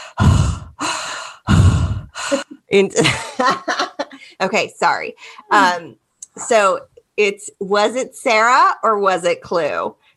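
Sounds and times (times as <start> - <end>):
voiced gasping: 0.0 - 2.5
person imitating heavy breathing of a prank caller: 0.0 - 2.6
speech: 2.3 - 3.8, 4.4 - 10.1
laughter: 3.0 - 4.2.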